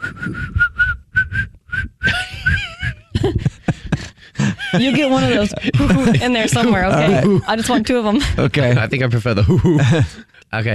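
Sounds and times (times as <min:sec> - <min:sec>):
person attempting to whistle: 0:00.0 - 0:03.1
speech: 0:00.3 - 0:00.6, 0:04.7 - 0:10.7
laughter: 0:02.1 - 0:10.3.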